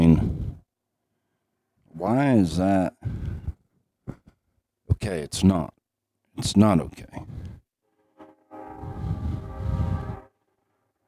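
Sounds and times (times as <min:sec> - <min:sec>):
speech: 0:02.0 - 0:03.2, 0:05.0 - 0:05.8, 0:06.4 - 0:07.4
train horn blast with chord-like tone: 0:07.9 - 0:11.0.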